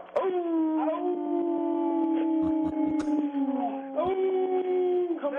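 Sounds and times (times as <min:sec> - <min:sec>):
dog howling on command to sing: 0:00.2 - 0:05.2
sharp slaps or clicks: 0:02.5 - 0:03.2.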